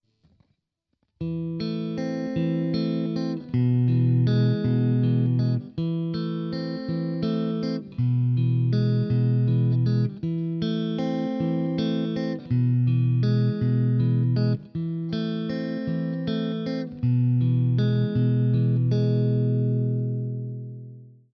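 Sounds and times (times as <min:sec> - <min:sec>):
guitar fingerpicking pattern: 0:01.2 - 0:21.2.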